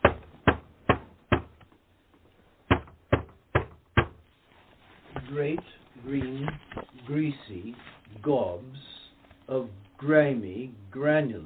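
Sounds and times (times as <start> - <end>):
sharp knocks on a door: 2.7 - 4.2
speech: 5.3 - 8.9, 9.5 - 11.4.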